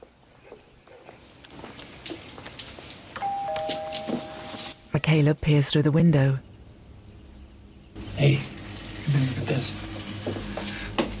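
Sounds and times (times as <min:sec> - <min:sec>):
faint footsteps on the path: 0:00.0 - 0:04.9, 0:08.0 - 0:11.1
two-tone doorbell chime at a front door of a house: 0:03.2 - 0:04.8
speech: 0:05.1 - 0:06.5, 0:08.2 - 0:08.5, 0:09.1 - 0:10.5.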